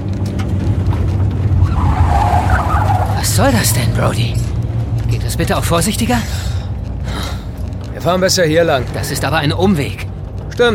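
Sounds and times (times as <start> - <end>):
old Chevrolet engine rumble: 0.0 - 10.7
tires scraping on loose stones of a gravel track: 0.0 - 10.7
rising whine: 0.6 - 5.0
speech: 3.4 - 4.5, 5.1 - 6.5, 8.0 - 10.0.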